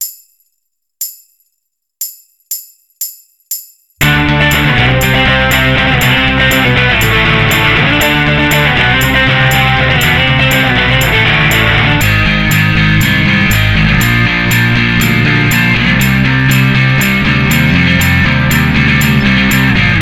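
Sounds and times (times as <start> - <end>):
punk rock jam track: 4.0 - 20.0.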